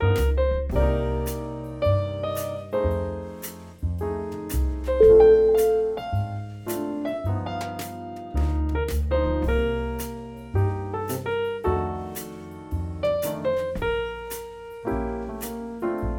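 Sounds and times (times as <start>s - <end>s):
soft jazz ballad: 0.0s - 16.1s.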